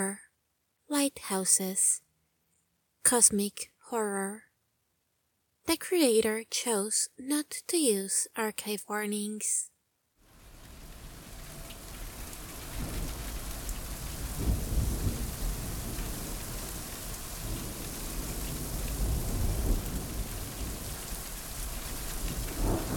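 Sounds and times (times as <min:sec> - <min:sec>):
speech: 0:00.0 - 0:00.2, 0:00.9 - 0:02.0, 0:03.0 - 0:04.5, 0:05.7 - 0:09.7
steady heavy rain pouring: 0:10.3 - 0:22.9
low distant rolling thunder: 0:10.7 - 0:22.9.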